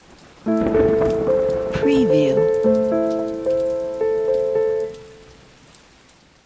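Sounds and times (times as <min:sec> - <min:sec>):
piano arpeggio in octave 3: 0:00.5 - 0:05.4.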